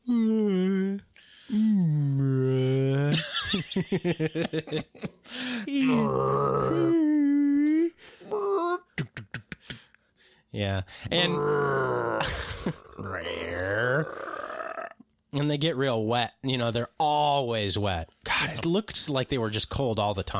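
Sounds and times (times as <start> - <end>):
person imitating a movie monster's moaning with low wavering groans: 0.0 - 3.2, 5.6 - 9.0, 11.1 - 15.0
person laughing: 3.0 - 6.0, 8.8 - 9.9, 12.2 - 13.1
speech: 3.8 - 5.2, 5.9 - 6.9, 10.6 - 14.3, 15.3 - 20.3.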